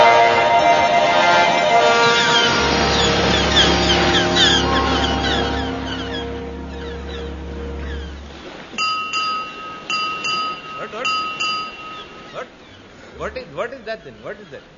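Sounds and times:
voices talking: 0.0 - 8.6, 9.2 - 14.7
deep horn blast: 0.0 - 8.8
ship's bell striking six bells: 0.0 - 12.4.

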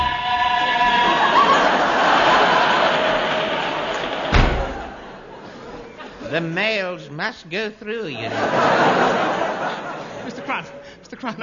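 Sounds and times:
laughter: 0.0 - 6.4, 8.1 - 11.4
door slamming: 3.0 - 5.2
speech: 6.4 - 9.5, 10.3 - 11.4.

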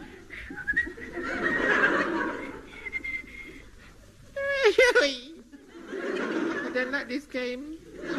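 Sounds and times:
laughter: 0.0 - 7.2, 7.8 - 8.1
Boy Scout whistling a bright merry tune: 0.4 - 1.2, 2.8 - 3.5
speech: 6.8 - 8.1.

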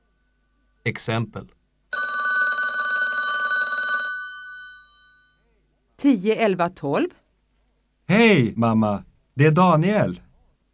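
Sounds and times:
speech: 0.8 - 1.6, 6.0 - 7.2, 8.1 - 10.3
telephone bell ringing: 1.9 - 5.4.

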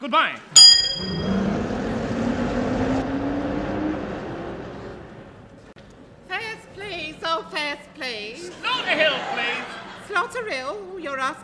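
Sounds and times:
speech: 0.0 - 1.4, 7.5 - 11.4
bus engine revving as it pulls away: 1.0 - 8.2
laughter: 8.3 - 10.7.

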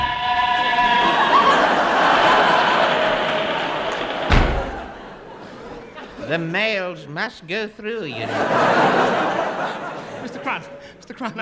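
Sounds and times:
laughter: 0.2 - 6.6, 8.0 - 11.4
door being opened and slammed shut: 3.9 - 5.2
speech: 6.3 - 11.4.

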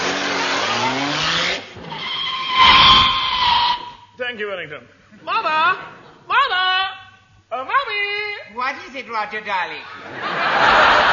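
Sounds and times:
car engine revving while driving off: 0.0 - 1.9
car tyres skidding: 0.6 - 4.2
speech: 4.3 - 6.0, 7.5 - 11.0
laughter: 9.8 - 11.1.

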